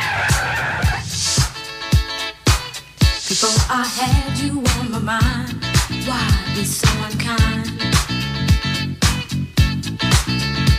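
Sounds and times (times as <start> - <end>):
car tires skidding and squealing: 0.0 - 1.3
steady thumping beat: 0.0 - 10.7
speech: 3.7 - 7.8.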